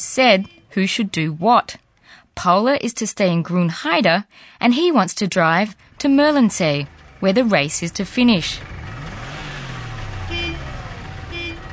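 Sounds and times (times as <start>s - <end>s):
speech: 0.2s - 1.8s, 2.4s - 8.8s
car engine failing to start: 5.8s - 11.7s.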